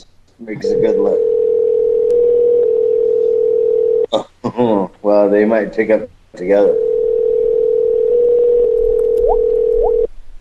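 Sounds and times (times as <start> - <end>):
speech: 0.4 - 1.3, 4.1 - 6.8
dual ringing tone on a telephone line: 0.6 - 4.1, 6.7 - 10.1.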